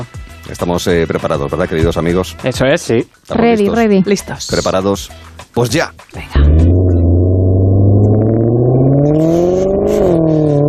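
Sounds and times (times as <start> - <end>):
speech: 0.0 - 6.7
Maserati sports car engine revving and accelerating: 6.4 - 10.6.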